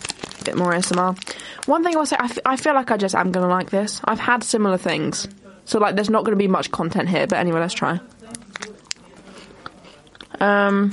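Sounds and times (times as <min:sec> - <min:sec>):
speech: 0:00.5 - 0:08.4, 0:10.4 - 0:10.9
biting and chewing a strawberry and white chocolate cereal bar: 0:08.3 - 0:10.4.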